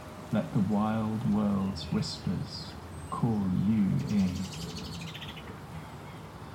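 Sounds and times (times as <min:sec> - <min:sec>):
steady low outdoor rumble: 0:00.0 - 0:06.5
speech: 0:00.3 - 0:04.8
mistle thrush alarm calls on yew berries: 0:03.8 - 0:05.5.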